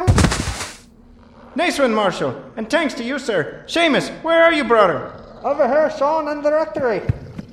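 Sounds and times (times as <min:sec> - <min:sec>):
heavy thuds against a door: 0:00.1 - 0:00.7
sharp knocks: 0:00.1 - 0:00.8
speech: 0:01.6 - 0:07.2.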